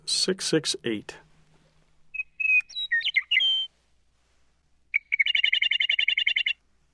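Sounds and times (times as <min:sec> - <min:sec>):
speech: 0:00.2 - 0:01.3
Western Meadowlark song played back from a bird song book: 0:02.1 - 0:03.8, 0:04.9 - 0:06.7.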